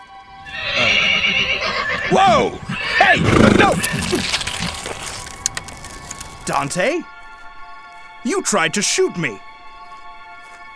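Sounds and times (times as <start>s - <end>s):
horse neighing: 0.3s - 6.9s
speech: 2.1s - 4.4s, 6.4s - 7.1s, 8.2s - 9.4s.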